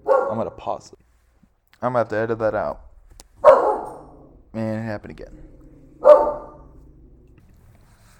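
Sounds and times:
dog barking: 0.0s - 0.5s, 3.4s - 4.4s, 5.6s - 7.0s
speech: 0.3s - 1.0s, 1.8s - 3.5s, 4.5s - 5.5s.

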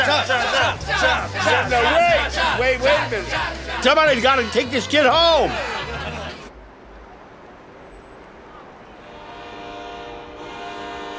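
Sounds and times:
laughter: 0.0s - 6.5s
speech: 0.1s - 5.8s
train horn blast: 8.9s - 11.1s.

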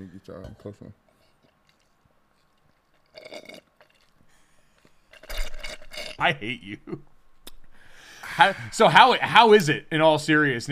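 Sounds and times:
speech: 0.0s - 1.1s, 6.2s - 7.1s, 8.4s - 10.6s
slurping water through a straw: 1.6s - 4.2s.

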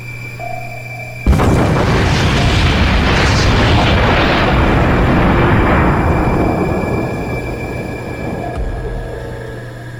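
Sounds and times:
massive torpedo explosion striking its target: 1.3s - 9.8s.

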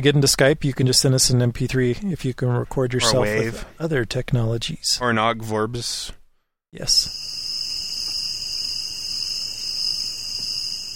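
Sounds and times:
speech: 0.0s - 7.5s
crickets chirping: 6.9s - 10.9s.

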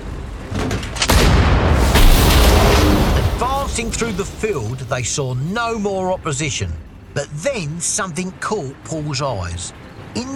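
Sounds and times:
explosion destroying a German wheeled PaK 40 anti-tank gun in a haystack: 1.1s - 4.9s
low rumble: 1.1s - 7.8s
sustained crackling roar of a destroyed anti-tank gun: 1.7s - 4.6s
speech: 3.8s - 10.3s.

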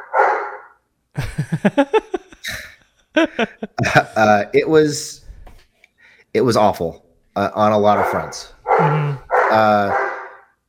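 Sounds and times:
dog barking: 0.0s - 0.8s, 8.0s - 10.5s
speech: 1.2s - 2.6s, 3.2s - 5.2s, 6.3s - 10.0s
laughter: 1.2s - 4.5s.

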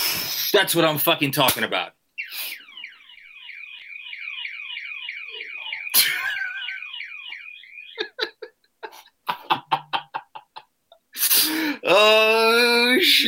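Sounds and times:
speech: 0.6s - 2.0s, 11.5s - 13.2s
electronic alarm warbling: 2.2s - 8.3s
laughter: 6.0s - 6.9s, 8.0s - 10.8s.

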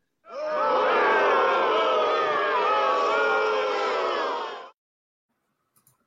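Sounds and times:
large crowd booing: 0.3s - 4.8s.

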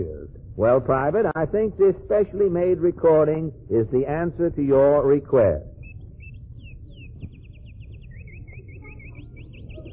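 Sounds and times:
speech: 0.0s - 5.7s
low rumble: 0.0s - 9.9s
songbirds singing in the morning: 5.6s - 9.9s.

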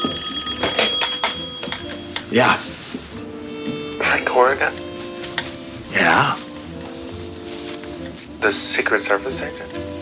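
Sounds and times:
telephone bell ringing: 0.0s - 2.3s
speech: 2.3s - 2.7s, 4.1s - 4.8s, 5.9s - 6.4s, 8.4s - 9.9s.

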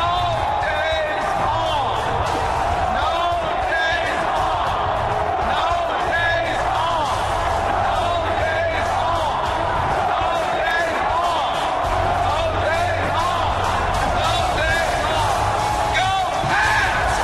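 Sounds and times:
huge outdoor parade crowd roaring and chanting: 0.0s - 17.2s.

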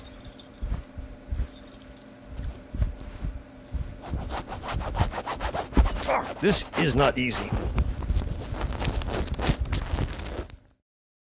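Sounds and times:
metal keys jangling and scraping: 0.0s - 0.8s, 1.4s - 2.2s
steady low hum: 0.0s - 10.7s
speech: 6.1s - 7.8s.

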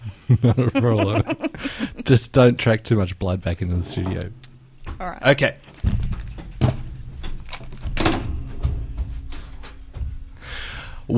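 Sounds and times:
laughter: 0.3s - 2.1s
speech: 0.3s - 4.4s, 5.0s - 5.7s
door closing: 3.8s - 9.7s.

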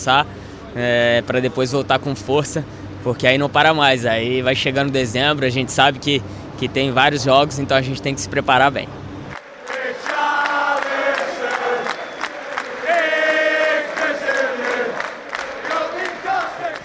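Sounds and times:
speech: 0.0s - 9.0s
football supporters chanting in a stadium in England: 9.3s - 16.8s
rhythmic claps or beats: 9.3s - 16.8s.

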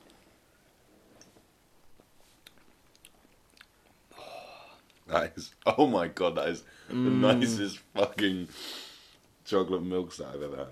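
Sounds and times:
soft lip smacks from sipping beer: 2.4s - 4.0s
speech: 5.1s - 8.8s, 9.5s - 10.7s.

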